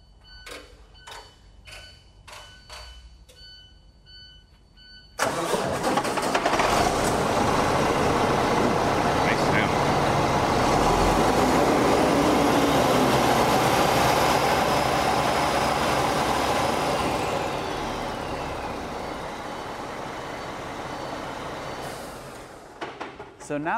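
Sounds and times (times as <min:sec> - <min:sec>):
diesel truck engine with exhaust removed revving at wide-open throttle: 0:05.2 - 0:22.8
speech: 0:23.5 - 0:23.7.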